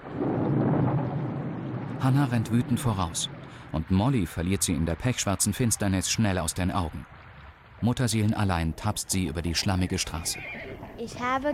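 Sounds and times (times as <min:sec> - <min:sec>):
steady heavy rain: 0:00.0 - 0:10.4
deep continuous rumble of thunder: 0:00.0 - 0:11.0
speech: 0:02.0 - 0:07.2, 0:07.8 - 0:11.5.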